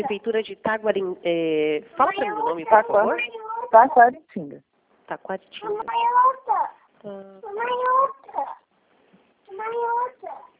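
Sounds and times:
speech: 0:00.0 - 0:08.6, 0:09.6 - 0:10.5
baby babbling and cooing: 0:02.0 - 0:03.9, 0:05.6 - 0:08.7, 0:09.5 - 0:10.5.

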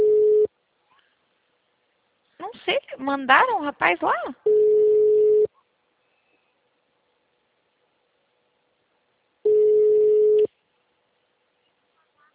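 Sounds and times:
telephone ringback tone as a call is placed before voicemail: 0:00.0 - 0:00.5, 0:04.5 - 0:05.5, 0:09.5 - 0:10.5
speech: 0:03.0 - 0:04.5.

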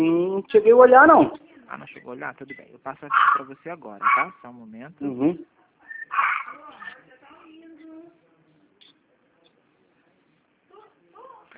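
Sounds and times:
speech: 0:00.0 - 0:06.3
small Yorkshire terrier yipping: 0:03.1 - 0:04.4, 0:05.9 - 0:07.0.

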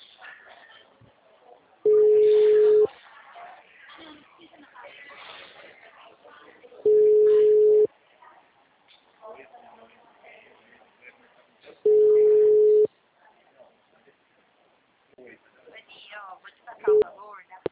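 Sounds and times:
faint voices on a telephone line: 0:00.0 - 0:17.7
telephone ringback tone on a call: 0:01.9 - 0:02.9, 0:06.9 - 0:07.9, 0:11.9 - 0:12.9.

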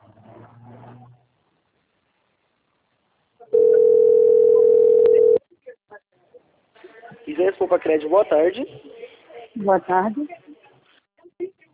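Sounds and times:
telephone ringing with an incoming call from a bank: 0:03.5 - 0:05.4
speech: 0:07.7 - 0:08.9, 0:09.6 - 0:10.4.

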